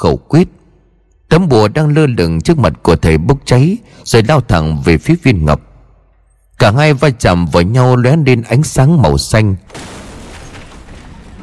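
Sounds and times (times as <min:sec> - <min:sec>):
speech: 0:00.0 - 0:00.6, 0:01.3 - 0:05.7, 0:06.6 - 0:09.9
explosion sound effect with crackling bursts: 0:09.7 - 0:11.4.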